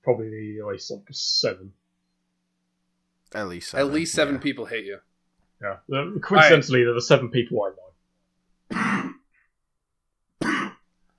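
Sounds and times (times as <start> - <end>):
speech: 0.1 - 1.8, 3.3 - 7.8
harsh coughs: 8.7 - 9.4, 10.4 - 10.9.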